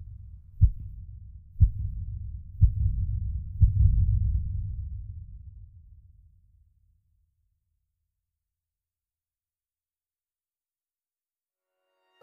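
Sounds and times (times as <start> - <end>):
slow steady heartbeat thumping: 0.0 - 5.1.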